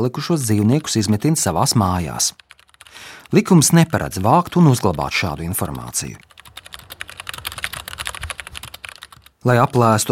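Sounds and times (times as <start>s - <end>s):
speech: 0.0s - 6.3s, 9.4s - 10.1s
rapid typing on a computer keyboard: 2.3s - 9.4s.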